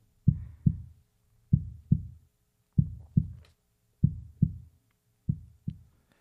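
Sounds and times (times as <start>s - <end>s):
heartbeat sound from a sound therapy machine: 0.2s - 2.2s, 2.8s - 4.7s, 5.3s - 5.9s.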